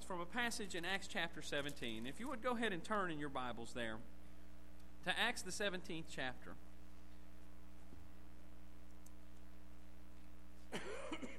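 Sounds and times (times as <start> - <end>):
steady low electrical hum: 0.0 - 11.3
speech: 0.1 - 4.2, 5.0 - 6.7, 10.7 - 11.2
person coughing roughly: 10.7 - 11.3.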